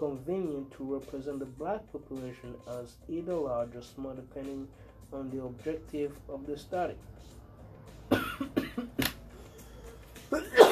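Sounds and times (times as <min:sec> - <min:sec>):
speech: 0:00.0 - 0:07.4
person coughing: 0:08.1 - 0:08.9, 0:10.3 - 0:10.6.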